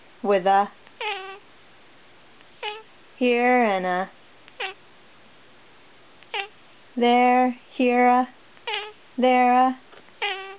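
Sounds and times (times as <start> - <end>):
speech: 0.2 - 0.8, 3.2 - 4.2, 7.0 - 8.4, 9.2 - 9.8
cat meowing on a farm: 1.0 - 1.4, 2.6 - 2.9, 4.6 - 4.8, 6.3 - 6.6, 8.6 - 9.0, 10.2 - 10.5.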